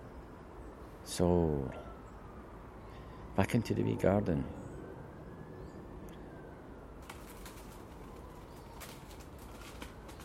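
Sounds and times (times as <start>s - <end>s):
steady outdoor rush: 0.0s - 10.2s
speech: 1.1s - 1.9s, 3.4s - 4.6s
bird wingbeats fluttering in a garden: 7.0s - 10.2s.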